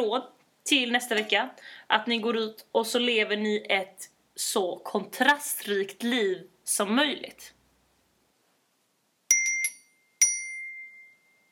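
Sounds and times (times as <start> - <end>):
speech: 0.0 - 7.6
bright metallic ding of a phone message alert: 9.3 - 11.4.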